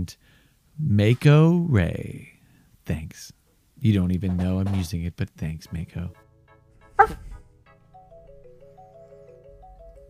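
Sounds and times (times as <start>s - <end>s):
speech: 0.0s - 2.3s, 2.9s - 6.2s, 7.0s - 7.3s
dog barking: 7.0s - 7.3s
soft plinking melody: 7.7s - 10.0s.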